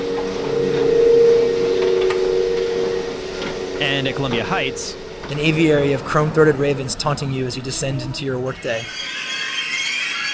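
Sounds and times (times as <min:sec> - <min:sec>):
escalator droning: 0:00.0 - 0:10.3
speech: 0:03.8 - 0:09.2.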